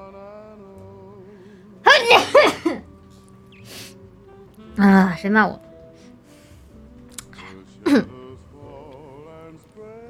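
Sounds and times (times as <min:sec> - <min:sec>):
sneeze: 0:01.9 - 0:02.8
speech: 0:04.8 - 0:05.6.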